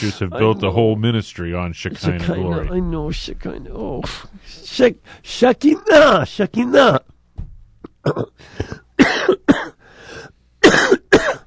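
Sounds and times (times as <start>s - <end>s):
speech: 0.0s - 7.1s, 8.0s - 9.3s
harsh coughing and throat clearing bringing up phlegm: 7.9s - 9.8s, 10.6s - 11.4s.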